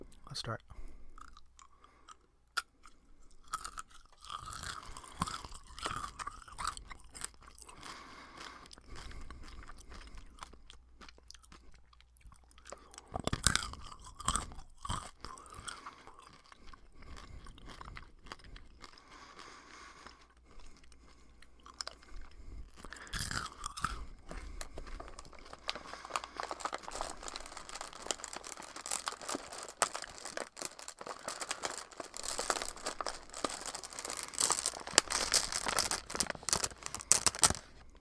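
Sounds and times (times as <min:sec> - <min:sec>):
chewing crunchy snacks: 0:01.1 - 0:37.9
eating crunchy snacks straight from a bag: 0:01.1 - 0:37.9.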